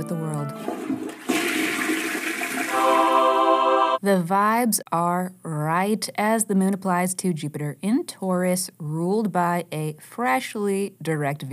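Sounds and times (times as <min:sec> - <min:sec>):
toilet flushing and refilling: 0:00.4 - 0:04.0
speech: 0:04.0 - 0:11.5.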